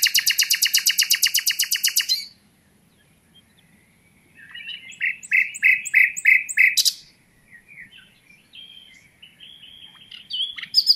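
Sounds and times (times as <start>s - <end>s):
common nightingale Luscinia megarhynchos singing: 0.0s - 10.9s.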